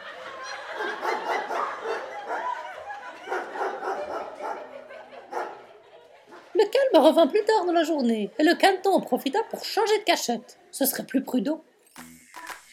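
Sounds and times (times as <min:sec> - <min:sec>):
laughter: 0:00.0 - 0:10.5
pack of hunting dogs barking and yelping excitedly: 0:00.7 - 0:02.6, 0:03.2 - 0:05.7
speech: 0:06.6 - 0:11.7.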